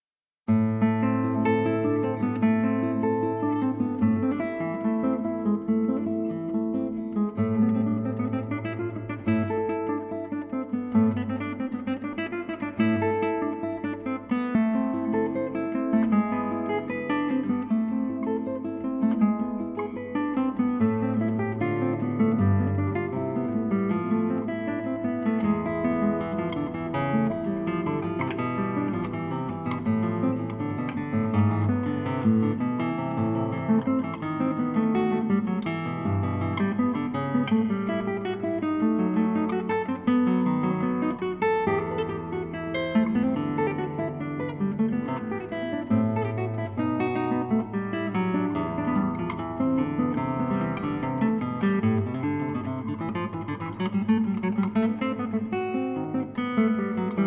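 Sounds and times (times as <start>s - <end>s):
guitar playing: 0.5s - 57.2s.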